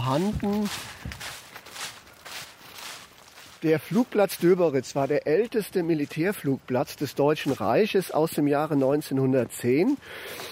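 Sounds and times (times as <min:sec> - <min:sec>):
footsteps of people walking outdoors toward an old former military airfield: 0:00.0 - 0:10.4
hiss: 0:00.0 - 0:10.4
speech: 0:00.1 - 0:01.2, 0:03.6 - 0:10.4.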